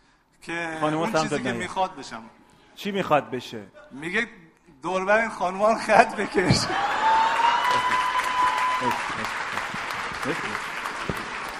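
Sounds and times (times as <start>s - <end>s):
speech: 0.4s - 6.9s, 10.3s - 10.6s
audience applause: 6.4s - 11.5s.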